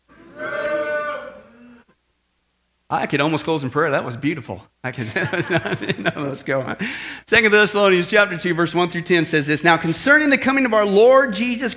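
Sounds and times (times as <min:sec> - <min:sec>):
crowd of people imitating a cow mooing: 0:00.1 - 0:01.8
speech: 0:02.9 - 0:11.7
laughter: 0:04.9 - 0:07.0.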